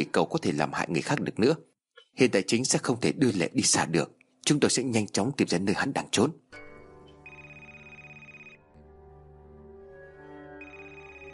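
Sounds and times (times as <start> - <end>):
speech: 0.0 - 6.6
telephone ringing: 7.2 - 8.7, 10.6 - 11.3.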